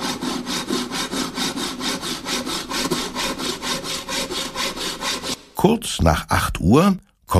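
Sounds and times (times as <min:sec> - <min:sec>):
hand saw cutting wooden shelf boards to size: 0:00.0 - 0:05.6
speech: 0:05.6 - 0:07.3.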